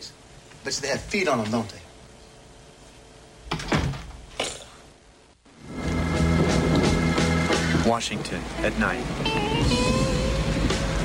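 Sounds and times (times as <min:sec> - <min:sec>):
speech: 0:00.0 - 0:01.9, 0:07.9 - 0:10.0
road noise: 0:05.5 - 0:11.0
car engine rumbling as the vehicle rolls to a stop: 0:05.6 - 0:11.0.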